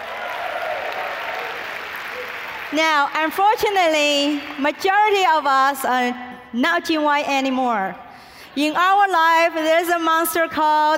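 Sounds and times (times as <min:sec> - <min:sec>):
audience applause at a live event: 0:00.0 - 0:03.0
speech: 0:02.7 - 0:08.0, 0:08.6 - 0:10.9.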